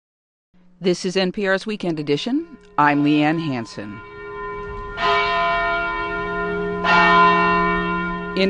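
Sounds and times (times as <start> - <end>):
speech: 0.8 - 4.1, 5.0 - 5.2, 6.8 - 7.1
church bells ringing: 1.9 - 8.4.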